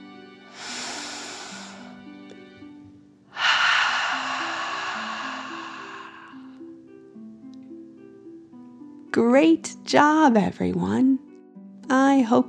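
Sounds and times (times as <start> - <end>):
soft steady music: 0.0 - 12.4
deep breaths in and out: 0.5 - 2.1, 3.3 - 6.7
speech: 9.2 - 11.1, 12.2 - 12.4.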